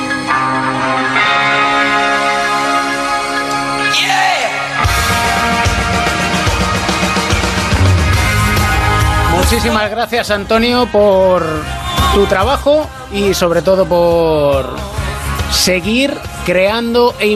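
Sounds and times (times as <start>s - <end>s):
rock Christmas song: 0.0s - 17.3s
steady drum beat: 4.9s - 9.9s
speech: 9.6s - 14.8s, 15.5s - 17.3s.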